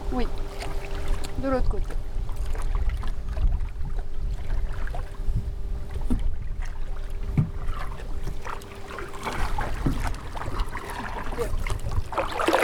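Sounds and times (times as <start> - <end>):
faint steady hum: 0.0 - 12.6
oars rowing a small boat on water: 0.0 - 12.6
speech: 0.1 - 0.4, 1.4 - 2.1
constant wind noise: 1.4 - 8.5, 9.3 - 12.3.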